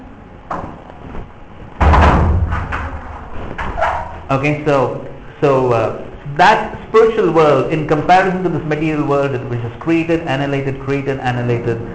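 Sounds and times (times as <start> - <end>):
rumbling rattle of a door: 1.7 - 4.3
loud dull thud of a door being latched shut: 1.8 - 4.3
speech: 4.3 - 11.9.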